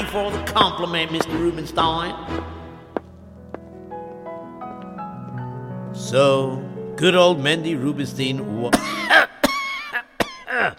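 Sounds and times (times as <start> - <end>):
speech: 0.1 - 2.5, 6.0 - 9.2, 10.6 - 10.7
man coughing: 8.7 - 10.7.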